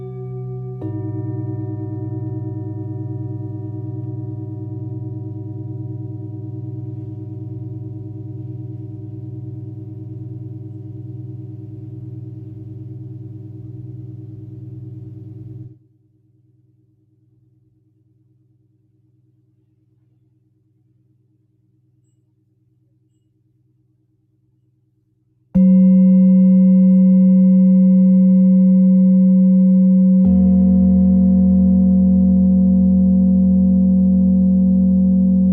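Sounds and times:
singing bowls ringing in long steady tones: 0:00.0 - 0:15.8, 0:25.6 - 0:35.5
faint low hum: 0:00.0 - 0:35.5.

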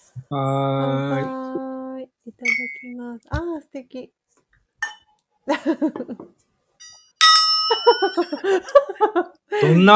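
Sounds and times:
speech: 0:00.2 - 0:01.7, 0:02.3 - 0:04.2, 0:05.5 - 0:06.4, 0:07.8 - 0:09.9
glasses clinking in a toast: 0:04.8 - 0:05.2, 0:06.8 - 0:08.5
laughter: 0:05.5 - 0:06.2, 0:07.7 - 0:09.9.

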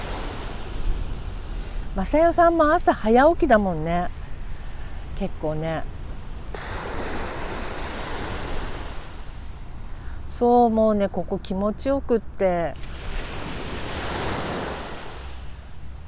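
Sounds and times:
ocean waves breaking on a beach of the Shonan coast: 0:00.0 - 0:16.0
speech: 0:02.0 - 0:04.2, 0:05.2 - 0:06.6, 0:10.4 - 0:12.9.

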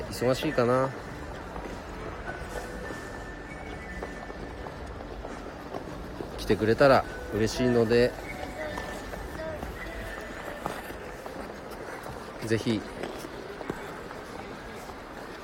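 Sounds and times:
speech: 0:00.2 - 0:01.1, 0:06.5 - 0:08.2, 0:12.5 - 0:12.9
ice skates gliding and scraping across a rink: 0:07.8 - 0:15.4.

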